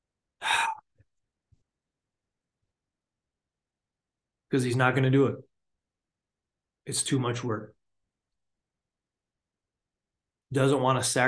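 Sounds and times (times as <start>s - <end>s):
man imitating a gasp with a deep breath: 0.4s - 0.8s
speech: 4.5s - 5.5s, 6.9s - 7.8s, 10.5s - 11.2s.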